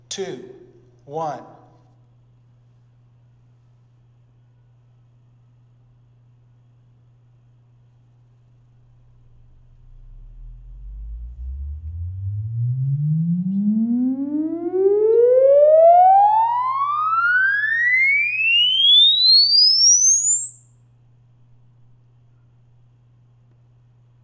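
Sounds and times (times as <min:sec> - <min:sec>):
speech: 0:00.2 - 0:01.6
steady low hum: 0:08.6 - 0:22.4
sine-sweep test tone from a sound system for measuring impulse response: 0:08.9 - 0:22.4.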